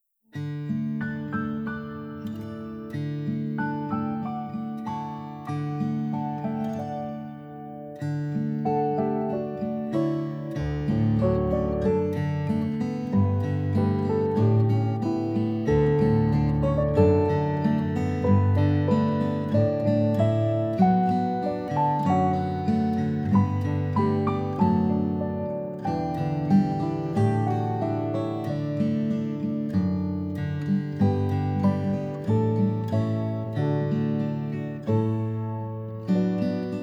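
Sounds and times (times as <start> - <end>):
guitar: 0.3 - 36.8
piano: 0.4 - 36.8.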